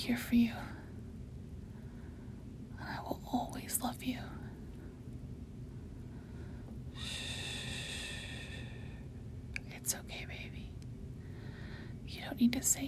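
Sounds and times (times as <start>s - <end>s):
speech: 0.0s - 0.8s, 3.6s - 4.5s, 12.2s - 12.8s
low steady hum: 0.0s - 12.8s
slow breathing close to the microphone: 1.6s - 2.6s, 5.7s - 9.2s, 11.2s - 12.0s.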